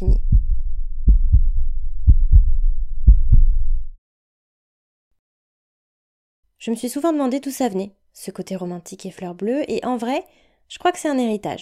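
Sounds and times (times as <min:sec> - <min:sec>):
heartbeat: 0:00.0 - 0:03.9
low rumble: 0:00.0 - 0:04.0
speech: 0:06.6 - 0:11.6.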